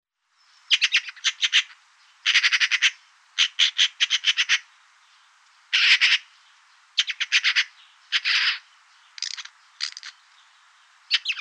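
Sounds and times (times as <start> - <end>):
Eurasian magpie calling with dry machine-gun rattling: 0.7 - 4.7, 5.7 - 6.3, 7.0 - 8.6, 9.2 - 10.2, 11.1 - 11.4.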